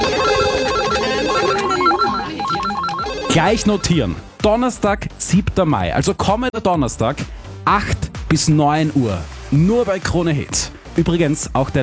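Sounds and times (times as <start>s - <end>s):
several telephones ringing in a radio studio in Austria: 0.0s - 4.2s
speech: 3.4s - 11.8s.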